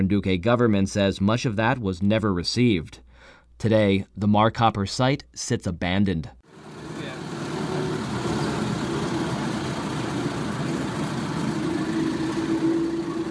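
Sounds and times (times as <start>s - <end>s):
speech: 0.0s - 3.0s, 3.6s - 6.4s
passenger truck engine droning driving up a rocky road: 6.5s - 13.2s.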